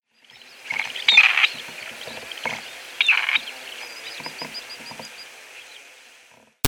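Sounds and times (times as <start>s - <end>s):
gray partridge calling: 0.3s - 5.2s.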